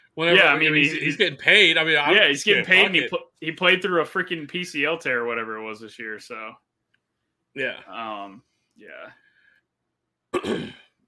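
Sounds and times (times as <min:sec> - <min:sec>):
speech: 0:00.2 - 0:06.7, 0:07.6 - 0:09.2, 0:10.3 - 0:10.8
person with COVID coughing: 0:10.3 - 0:11.0.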